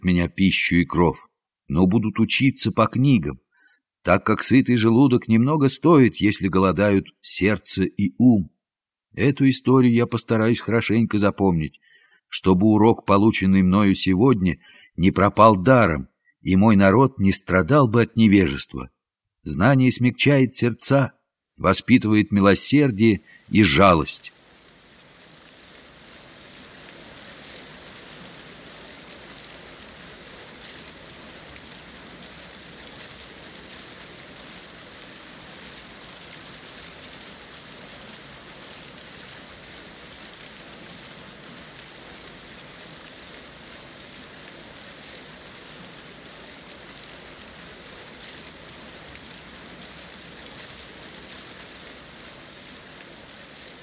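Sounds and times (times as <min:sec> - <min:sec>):
speech: 0:00.0 - 0:03.4, 0:04.0 - 0:24.4
steady dense rain: 0:22.5 - 0:53.8.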